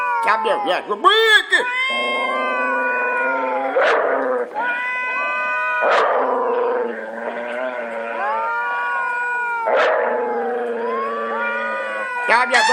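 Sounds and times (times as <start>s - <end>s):
speech: 0.3s - 2.4s, 5.8s - 7.4s, 12.3s - 12.7s
dog howling: 1.8s - 12.7s.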